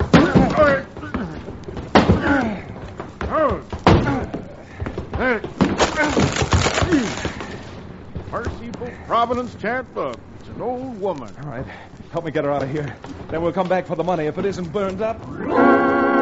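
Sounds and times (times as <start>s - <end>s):
locked closet door being forced open: 0.0s - 2.7s, 5.2s - 7.7s
voices straining and calling out: 0.0s - 14.0s
wood splintering: 0.0s - 16.2s
speech: 9.2s - 15.6s.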